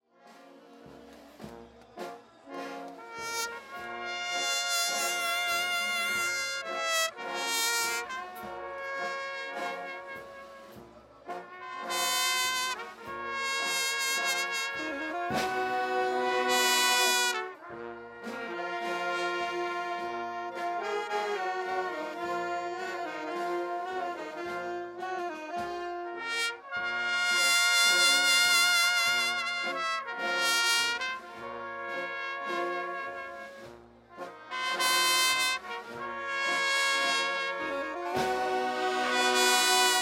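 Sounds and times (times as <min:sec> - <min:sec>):
procession band playing a phrase: 0:00.2 - 0:40.0.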